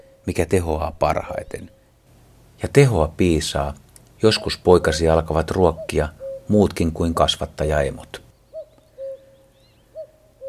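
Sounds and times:
common cuckoo calling two-note cu-coo: 0:00.0 - 0:00.3, 0:01.3 - 0:02.0, 0:04.2 - 0:06.5, 0:08.3 - 0:10.4
faint noise: 0:00.0 - 0:10.4
speech: 0:00.3 - 0:01.8, 0:02.6 - 0:08.2.

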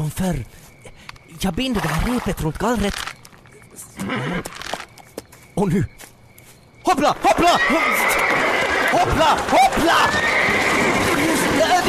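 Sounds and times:
speech: 0:00.0 - 0:00.7, 0:01.4 - 0:03.1, 0:04.0 - 0:04.7, 0:05.6 - 0:06.1, 0:06.8 - 0:10.6
horse giving a short wavering whinny: 0:04.0 - 0:04.7, 0:07.3 - 0:11.8.

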